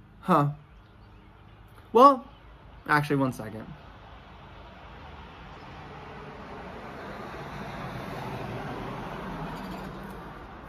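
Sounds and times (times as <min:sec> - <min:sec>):
speech: 0:00.2 - 0:00.6, 0:01.9 - 0:02.3, 0:02.9 - 0:03.8
truck driving past with road rumble: 0:04.0 - 0:10.6.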